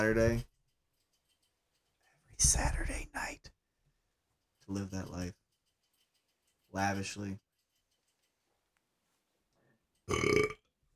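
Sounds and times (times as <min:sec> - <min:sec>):
speech: 0:00.0 - 0:00.5, 0:02.4 - 0:03.6, 0:04.7 - 0:05.4, 0:06.7 - 0:07.4, 0:10.1 - 0:10.6
single loud throaty burp: 0:10.1 - 0:10.7.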